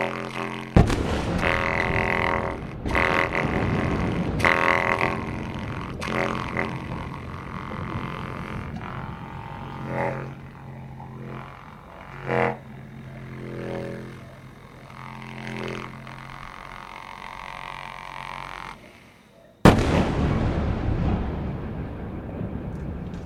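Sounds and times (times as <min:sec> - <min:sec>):
heavy blasts from the bombing of a city: 0:00.0 - 0:23.2
thick droning wall of layered sound: 0:00.0 - 0:23.2
loud sudden boom with rough roaring rumble: 0:00.8 - 0:11.1, 0:19.6 - 0:23.2.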